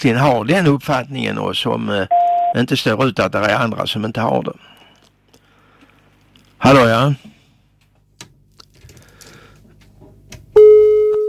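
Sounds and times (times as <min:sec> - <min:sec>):
speech: 0:00.0 - 0:04.8, 0:06.6 - 0:07.3
telephone busy tone after phone call dropped: 0:02.1 - 0:02.6, 0:10.6 - 0:11.2.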